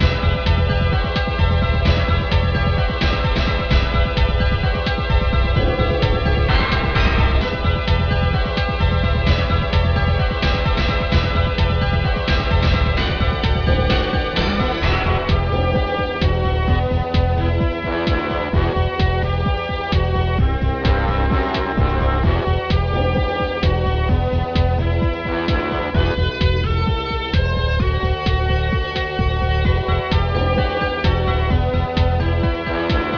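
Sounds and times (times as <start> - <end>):
complex music: 0.0 - 33.1.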